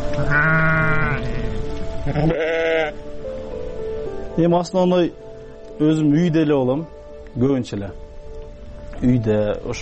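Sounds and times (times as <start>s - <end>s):
livestock noise: 0.1s - 3.0s
sheep bleating among ewes lambing on a farm: 0.1s - 3.0s
speech: 2.1s - 3.0s, 4.3s - 8.0s, 9.0s - 9.7s.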